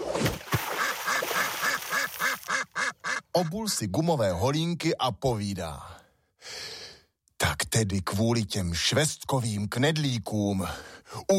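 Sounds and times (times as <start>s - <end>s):
splash of slippers falling into a pond: 0.0s - 2.6s
startled ducks on a pond quacking: 0.7s - 3.6s
speech: 3.4s - 6.6s, 7.8s - 11.3s.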